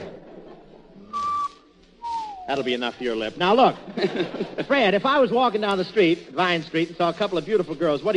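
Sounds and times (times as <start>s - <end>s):
laughter: 0.0s - 1.3s, 3.7s - 5.0s
human whistle with one clear held note: 1.1s - 2.8s
speech: 2.5s - 8.1s.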